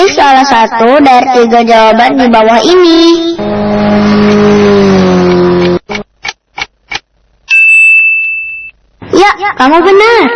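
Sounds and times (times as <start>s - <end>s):
speech: 0.4s - 5.3s, 9.2s - 10.3s
steady high-pitched tone: 2.8s - 6.0s, 7.5s - 8.8s
motorcycle engine revving with throttle blips: 3.2s - 6.1s.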